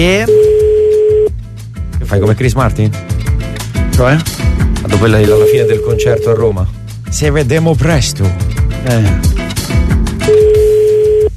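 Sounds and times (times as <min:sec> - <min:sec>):
speech: 0:00.0 - 0:00.4, 0:02.1 - 0:03.1, 0:04.0 - 0:09.4
electronic ringing tone of an unanswered phone call: 0:00.3 - 0:01.3, 0:04.9 - 0:06.6, 0:10.3 - 0:11.3.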